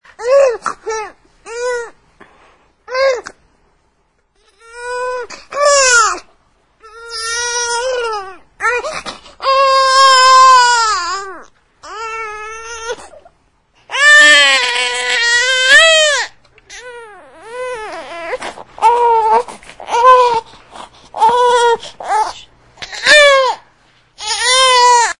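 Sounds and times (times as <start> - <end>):
baby crying: 4.4 - 13.3, 13.9 - 20.5, 21.2 - 23.6, 24.2 - 25.1.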